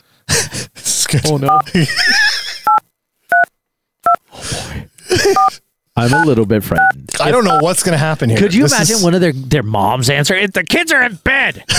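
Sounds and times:
laughter: 0.3 - 2.8, 4.9 - 9.4, 10.6 - 11.7
speech: 1.1 - 2.2, 5.2 - 11.7
phone keypad dialing tones: 6.1 - 7.6.

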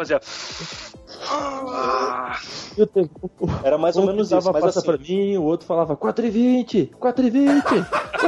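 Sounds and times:
speech: 0.0 - 8.2
voice imitating a pained wailing moan: 1.2 - 2.5
laughter: 7.4 - 8.2.

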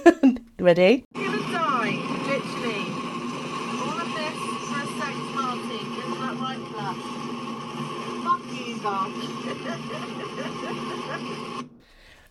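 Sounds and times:
speech: 0.6 - 1.2
low car engine drone: 1.2 - 11.8
laughter: 8.8 - 11.6.

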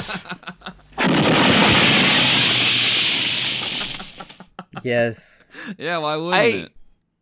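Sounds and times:
laughter: 0.0 - 1.0, 3.8 - 5.0
movie explosion sound effect: 1.0 - 4.4
speech: 4.8 - 6.8.

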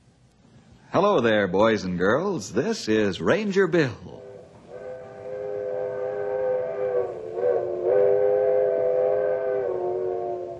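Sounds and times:
speech: 1.0 - 4.2
old-fashioned coal-burning steam locomotive whistle: 4.1 - 10.5.

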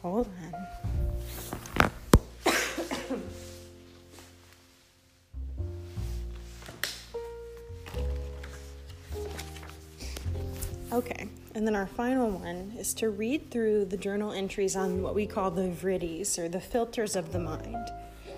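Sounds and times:
soft music: 0.0 - 18.3
person coughing: 2.4 - 3.3
speech: 11.6 - 18.1.

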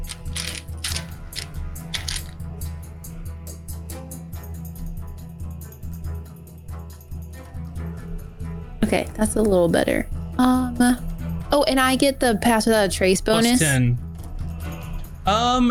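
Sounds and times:
dice rolled for a stealth check in a tabletop role-playing game: 0.0 - 2.4
speech: 8.8 - 11.0, 11.7 - 14.0, 15.2 - 15.7.

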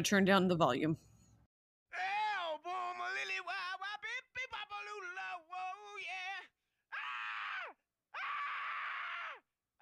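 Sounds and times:
speech: 0.0 - 1.1
man yelling hoarsely in a rock song intro: 1.9 - 9.4.

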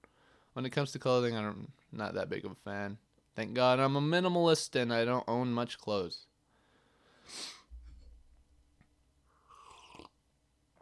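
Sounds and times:
speech: 0.6 - 6.3, 7.3 - 7.6
nasal sniff: 7.2 - 8.0.

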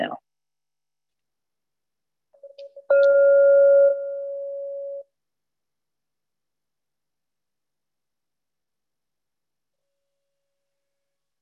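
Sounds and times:
bell ringing: 2.4 - 5.0.

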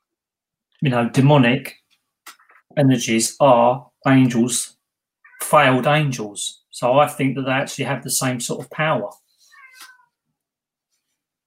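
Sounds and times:
speech: 0.8 - 1.8, 2.8 - 4.8, 5.4 - 9.2
cat meowing: 5.2 - 5.6, 9.5 - 10.2.

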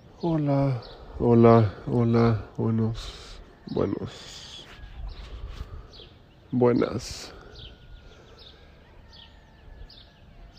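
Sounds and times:
roosters calling before dawn: 0.0 - 10.5
small birds chirping before dawn: 0.0 - 10.5
steady hiss of outdoor noise: 0.0 - 10.5
speech: 0.2 - 4.6, 6.5 - 7.4.

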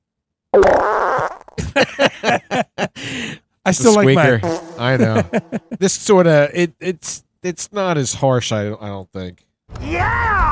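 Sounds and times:
fart sound effect: 0.5 - 1.6, 4.3 - 5.5
laughter: 1.6 - 3.2, 3.8 - 5.9
speech: 3.6 - 10.4.

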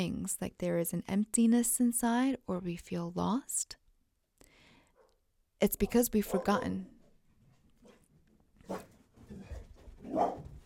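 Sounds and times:
speech: 0.0 - 3.8, 5.6 - 6.9
two dogs barking, yelping and whimpering: 5.9 - 6.8, 8.6 - 10.6.

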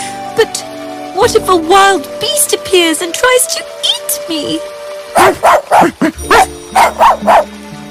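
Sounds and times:
speech: 0.4 - 7.6
small dog barking: 5.2 - 7.5.

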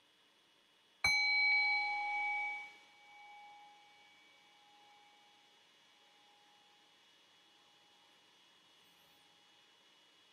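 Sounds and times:
meditation bell struck to begin a meditation: 1.0 - 6.8.

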